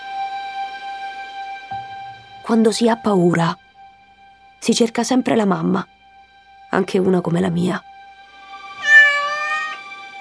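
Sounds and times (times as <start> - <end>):
speech: 2.5 - 3.6, 4.6 - 5.9, 6.7 - 7.9
cat meowing from a corridor: 8.7 - 9.9.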